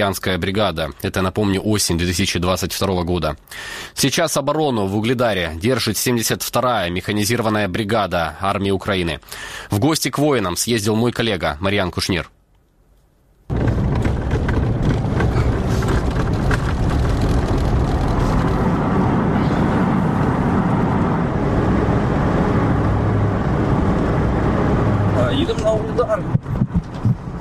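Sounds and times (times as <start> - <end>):
speech: 0.0 - 12.4
vehicle engine and road rumble driving toward front-line positions near Vuhledar: 13.5 - 27.3.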